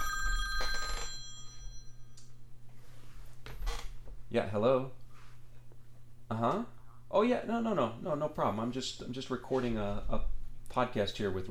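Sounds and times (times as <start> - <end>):
telephone bell ringing: 0.0 - 2.3
low steady hum: 0.0 - 11.4
speech: 4.3 - 5.0, 6.3 - 11.4.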